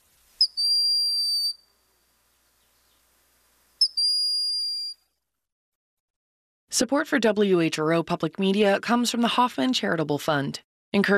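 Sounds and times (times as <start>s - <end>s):
hawk plaintive whistling call: 0.4s - 1.7s, 3.8s - 5.0s
speech: 6.7s - 11.1s.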